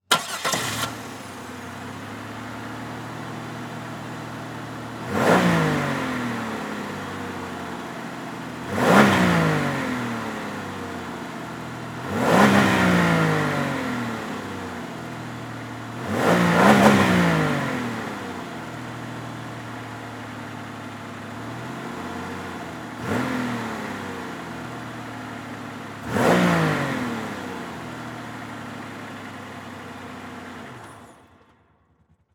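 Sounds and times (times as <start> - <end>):
Monte Carlo car engine starting, idling, revving and switching off: 0.1 - 2.6, 5.0 - 7.4, 8.6 - 10.9, 12.0 - 14.7, 16.0 - 18.5, 22.9 - 24.5, 26.0 - 27.7.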